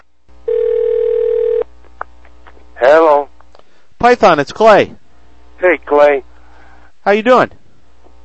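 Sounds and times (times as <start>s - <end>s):
steady telephone tone: 0.5s - 1.7s
speech: 4.0s - 5.0s, 5.6s - 6.3s, 7.1s - 7.6s.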